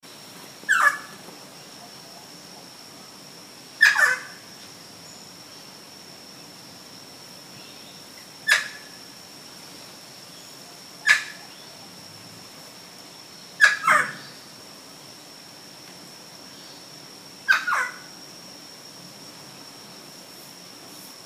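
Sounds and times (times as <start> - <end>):
squawk: 0.7 - 1.2, 3.8 - 4.4, 8.4 - 9.0, 11.0 - 11.5, 13.6 - 14.4, 17.5 - 18.1.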